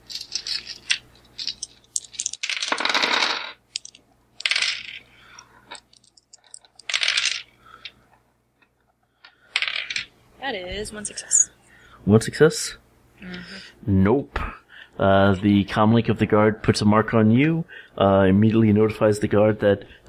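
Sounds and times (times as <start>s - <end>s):
dice rolled during a tabletop role-playing game: 0.0s - 7.6s, 9.5s - 10.1s
speech: 10.5s - 20.0s.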